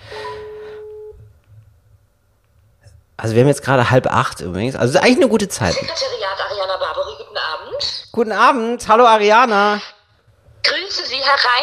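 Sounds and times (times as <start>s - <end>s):
telephone ringback tone over a speakerphone: 0.1s - 1.2s
speech: 3.2s - 10.0s, 11.2s - 11.6s.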